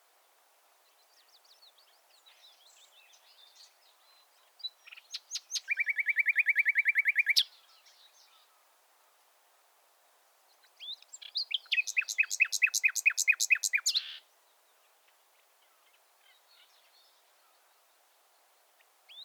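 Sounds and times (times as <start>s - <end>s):
common nightingale Luscinia megarhynchos singing: 1.3s - 8.5s, 10.6s - 14.3s.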